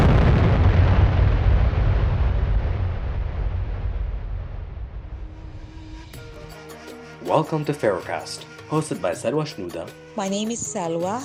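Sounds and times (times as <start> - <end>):
massive dynamite explosion: 0.0 - 6.0
deep heavy rumble of dynamite explosion: 0.0 - 6.4
speech: 7.3 - 11.2.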